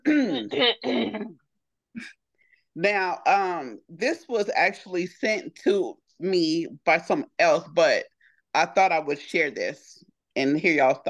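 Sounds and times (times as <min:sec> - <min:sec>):
person clearing throat: 0:00.0 - 0:01.4
speech: 0:02.8 - 0:11.0.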